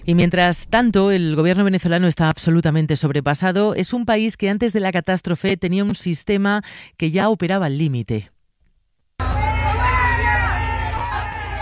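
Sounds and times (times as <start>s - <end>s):
speech: 0.0s - 8.3s
large crowd booing and jeering: 9.2s - 11.6s.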